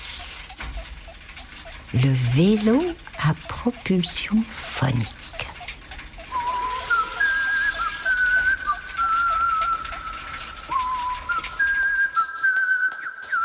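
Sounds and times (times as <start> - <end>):
speech: 1.9 - 5.4
person whistling a cheerful wandering melody: 6.3 - 13.4.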